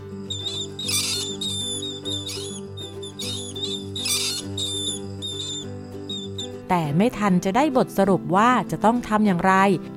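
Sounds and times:
baby mice squeaking shrilly: 0.2 - 6.6
speech: 6.7 - 9.9.

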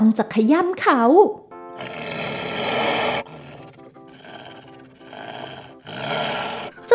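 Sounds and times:
speech: 0.0 - 2.2
beast roaring and snarling: 1.7 - 6.9
brief voiced cries: 1.7 - 6.9.

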